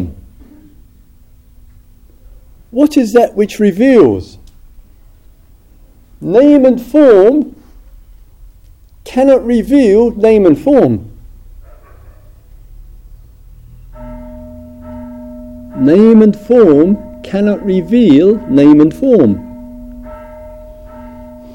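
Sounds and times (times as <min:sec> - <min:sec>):
speech: 0:02.7 - 0:04.4, 0:06.2 - 0:07.6, 0:09.0 - 0:11.1, 0:15.8 - 0:19.5
bell ringing with a long sustained tone: 0:14.0 - 0:21.5.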